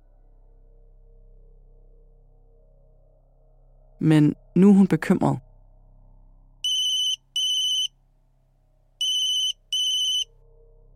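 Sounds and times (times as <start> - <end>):
low steady hum: 0.0 - 10.9
speech: 4.0 - 5.4
telephone ringing with electronic trills: 6.7 - 7.9, 9.0 - 10.2.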